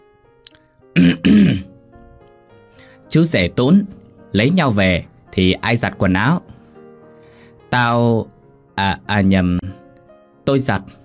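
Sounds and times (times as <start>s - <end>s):
speech: 0.9s - 1.7s, 3.1s - 6.5s, 7.7s - 9.7s, 10.5s - 11.0s
plump boy clearing his throat: 1.0s - 1.7s.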